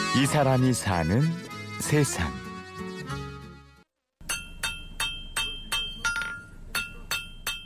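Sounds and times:
speech: 0:00.1 - 0:02.4
blacksmith hammer striking hot metal at a smithy in Cheonho-dong Seoul: 0:04.2 - 0:07.6.

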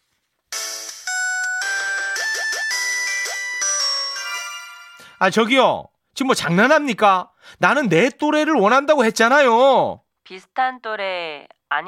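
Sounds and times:
phone ringing with a bright electronic chime melody while placing a call: 0:00.5 - 0:05.2
speech: 0:05.2 - 0:11.8.

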